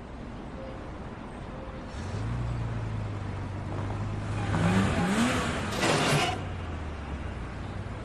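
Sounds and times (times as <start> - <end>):
car engine starting, revving and idling as the car pulls away: 1.9 - 7.9.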